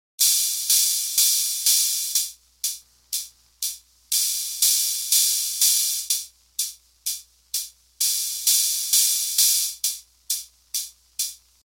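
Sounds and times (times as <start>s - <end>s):
drum machine open trigger hits: 0.2s - 11.5s.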